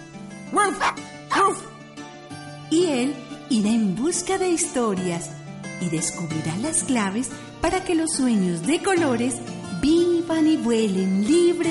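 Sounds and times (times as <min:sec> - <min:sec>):
playful dog barking: 0:00.6 - 0:01.7
speech: 0:03.0 - 0:11.6.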